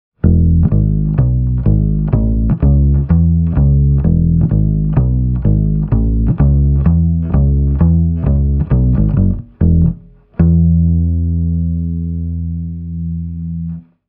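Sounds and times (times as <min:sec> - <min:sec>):
double bass with pickup through lightweight bass speaker cabinet: 0:00.2 - 0:13.8.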